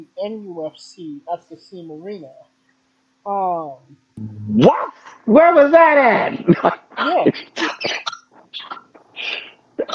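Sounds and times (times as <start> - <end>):
speech: 0.0 - 2.5, 3.2 - 9.9
harsh coughing with rough hacks: 7.4 - 9.9.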